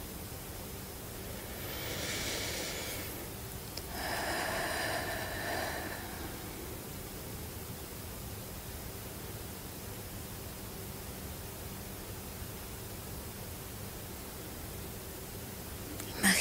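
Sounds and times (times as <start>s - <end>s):
steady hiss: 0.0s - 16.4s
slow breathing: 1.2s - 7.1s.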